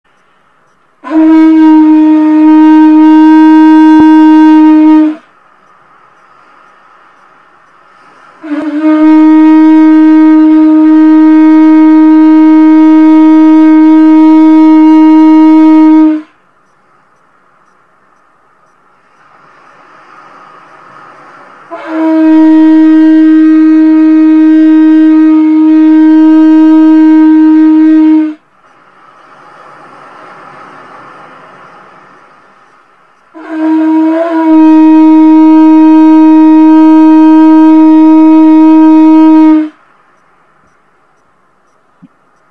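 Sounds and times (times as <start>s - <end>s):
triton shell horn: 1.0s - 16.5s, 20.8s - 28.6s, 31.6s - 39.9s.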